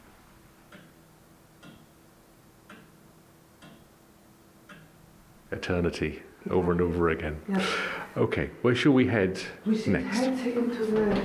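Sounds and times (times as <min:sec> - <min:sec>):
clock ticking softly: 0:00.7 - 0:01.0, 0:01.6 - 0:02.0, 0:02.6 - 0:04.0, 0:04.6 - 0:05.0
speech: 0:05.5 - 0:11.2.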